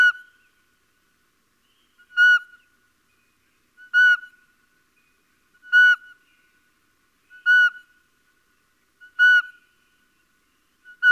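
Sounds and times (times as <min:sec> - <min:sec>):
little owl whistled notes: 0:00.0 - 0:00.4, 0:02.0 - 0:02.6, 0:03.8 - 0:04.4, 0:05.6 - 0:06.2, 0:07.3 - 0:07.9, 0:09.0 - 0:09.8, 0:10.8 - 0:11.1.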